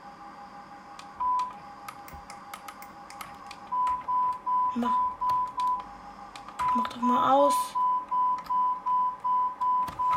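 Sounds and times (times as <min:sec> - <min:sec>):
repeated mid-pitched electronic beeping: 0:01.2 - 0:01.6, 0:03.7 - 0:05.9, 0:06.6 - 0:10.1
speech: 0:04.7 - 0:05.1, 0:06.8 - 0:07.8.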